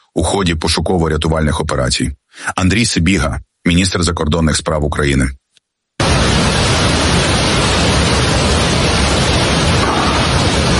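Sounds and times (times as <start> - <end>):
speech: 0.1 - 5.4
rushing floodwater churning with mud and debris: 6.0 - 10.7.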